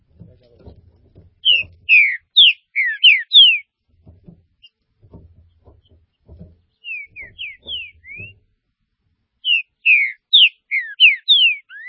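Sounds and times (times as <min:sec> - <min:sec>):
faint low rustling: 0:00.0 - 0:02.0, 0:03.7 - 0:09.5
Green-winged saltator song of loud clear whistled notes: 0:01.4 - 0:03.7, 0:06.7 - 0:08.5, 0:09.4 - 0:11.8.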